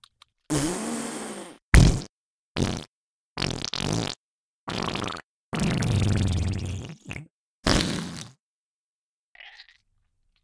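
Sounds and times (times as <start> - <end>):
loud farts: 0.5 - 8.4.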